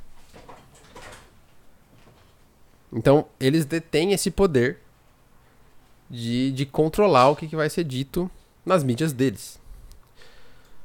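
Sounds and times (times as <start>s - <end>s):
chair scraping rattle: 0.1s - 1.4s
chair being adjusted with creaking clunks: 0.2s - 2.4s
speech: 2.9s - 4.8s, 6.1s - 9.6s.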